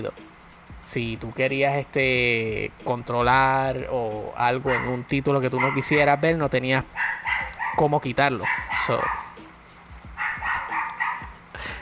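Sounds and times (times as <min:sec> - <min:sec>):
speech: 0:00.0 - 0:09.2
dog barking in sharp yaps: 0:04.6 - 0:06.0, 0:06.9 - 0:09.4, 0:10.2 - 0:11.4.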